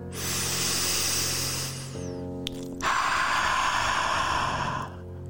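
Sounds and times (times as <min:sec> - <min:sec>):
long breathy open-mouthed exhales: 0:00.1 - 0:02.1, 0:02.8 - 0:05.0.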